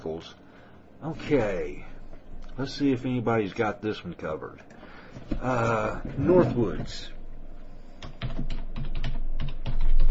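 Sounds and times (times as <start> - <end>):
speech: 0.2 - 0.4, 1.0 - 1.9, 2.6 - 7.2
computer keyboard typing as a search query is entered: 8.0 - 10.1.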